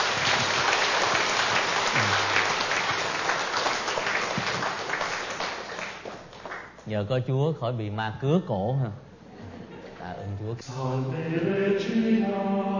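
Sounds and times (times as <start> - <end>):
large crowd applauding: 0.0 - 6.8
speech: 6.9 - 9.1, 10.0 - 12.7
laughter: 9.3 - 10.2.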